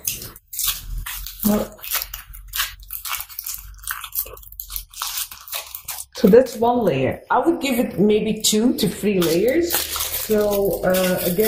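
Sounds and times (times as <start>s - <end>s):
paper towel being crumpled and flattened: 0.0s - 7.1s, 8.6s - 11.4s
speech: 1.5s - 1.8s, 6.2s - 11.4s.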